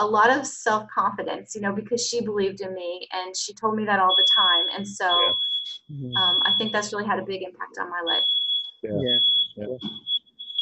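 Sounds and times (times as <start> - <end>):
speech: 0.0 - 10.1
person talking loudly: 3.8 - 7.5, 8.9 - 9.9
shrill steady smoke alarm tone: 3.9 - 10.6.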